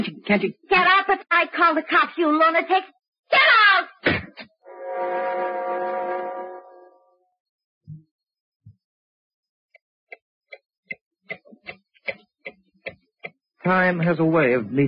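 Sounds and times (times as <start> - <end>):
speech: 0.0 - 4.2, 13.6 - 14.8
loud sustained horn-like blast: 4.6 - 7.3
clock ticking: 9.7 - 14.5.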